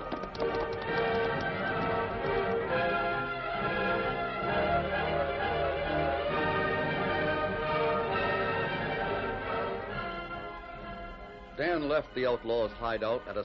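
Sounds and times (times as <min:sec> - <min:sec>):
horses' hooves clip-clopping as riders set off toward the mountains: 0:00.0 - 0:03.8
dense sustained musical backdrop: 0:00.0 - 0:13.4
speech: 0:11.8 - 0:13.4.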